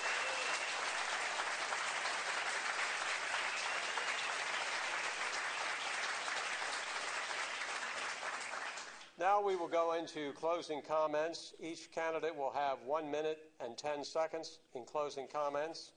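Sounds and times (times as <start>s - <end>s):
audience applause for candidates: 0.0s - 9.1s
speech: 9.2s - 15.9s.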